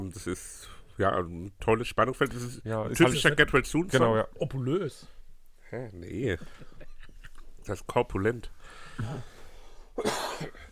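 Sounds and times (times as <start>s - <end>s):
speech: 0.1s - 6.8s, 7.6s - 9.3s, 10.0s - 10.6s
harsh throaty cough: 10.0s - 10.6s.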